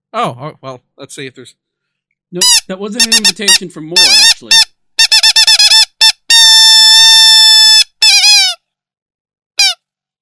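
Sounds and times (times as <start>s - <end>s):
speech: 0.1s - 1.7s, 2.3s - 4.7s
squeaky toy duck squeaking: 2.4s - 8.7s, 9.6s - 9.8s.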